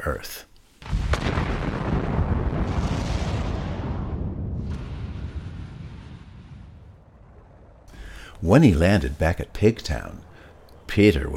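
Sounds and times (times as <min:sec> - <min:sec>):
speech: 0:00.0 - 0:01.0, 0:08.4 - 0:10.3, 0:10.9 - 0:11.3
rocket launching and zooming off into space: 0:00.8 - 0:08.3.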